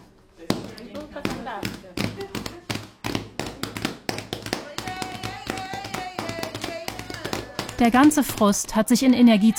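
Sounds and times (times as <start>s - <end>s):
sharp rhythmic hand claps: 0.5s - 8.6s
stamping feet from dancing: 0.5s - 8.8s
voices singing along: 4.6s - 8.2s
speech: 7.8s - 9.5s.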